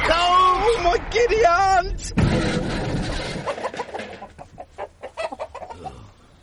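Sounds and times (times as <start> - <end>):
speech: 1.0 - 2.6
flock of chickens clucking and squawking: 2.2 - 6.4.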